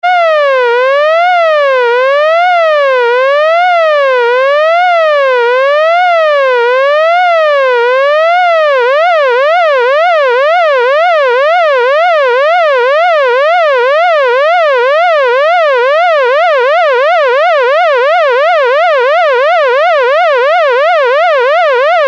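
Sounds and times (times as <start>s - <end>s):
broken siren: 0.0s - 22.0s.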